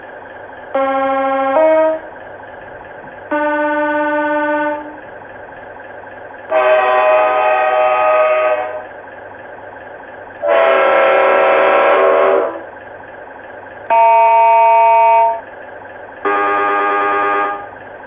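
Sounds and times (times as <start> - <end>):
diesel horns: 0.7 - 2.2, 3.3 - 5.1, 6.5 - 9.0, 10.4 - 12.7, 13.9 - 15.5, 16.2 - 18.0.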